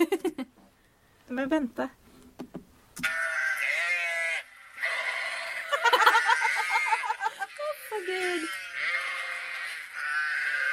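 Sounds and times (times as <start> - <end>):
speech: 1.3 - 2.0
sheep bleating loudly: 3.0 - 5.5, 7.7 - 10.7
laughter: 5.7 - 7.8.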